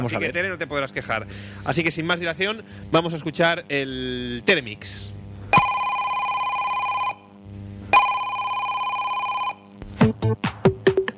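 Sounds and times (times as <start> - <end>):
speech: 0.0 - 5.6
telephone ringing with electronic trills: 5.5 - 10.2.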